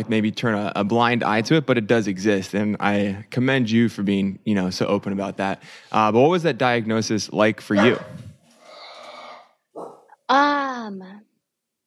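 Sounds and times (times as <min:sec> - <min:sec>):
speech: 0:00.0 - 0:08.2, 0:09.8 - 0:11.2
dogs barking: 0:07.8 - 0:08.2, 0:09.8 - 0:10.1.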